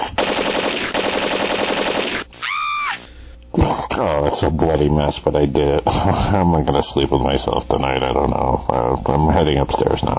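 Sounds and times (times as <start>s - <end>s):
rapid automatic gunfire: 0.2s - 2.3s
speech: 4.0s - 10.1s.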